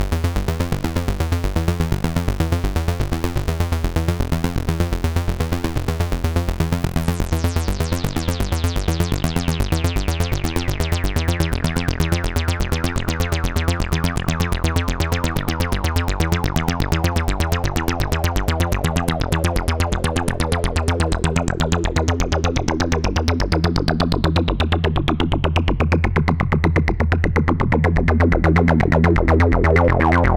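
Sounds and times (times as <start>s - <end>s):
acid bass loop: 0.0s - 30.3s.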